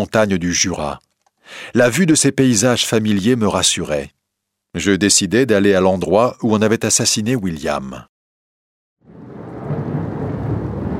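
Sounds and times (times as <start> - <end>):
speech: 0.0 - 8.1
rumbling thunder in a storm: 9.0 - 10.9
heavy rain: 9.2 - 10.9.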